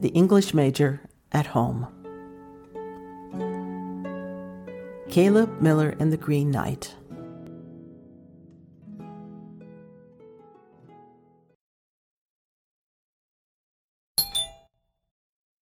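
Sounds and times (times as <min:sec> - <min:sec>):
speech: 0:00.0 - 0:02.0, 0:05.1 - 0:07.0
front doorbell chiming: 0:14.2 - 0:14.7
short sharp bright doorbell ring: 0:14.2 - 0:14.7.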